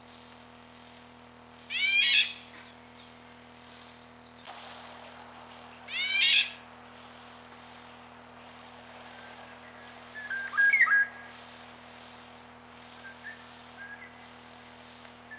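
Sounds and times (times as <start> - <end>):
faint steady hum: 0.0 - 15.3
Eurasian golden oriole calls: 4.9 - 7.0, 7.6 - 14.7.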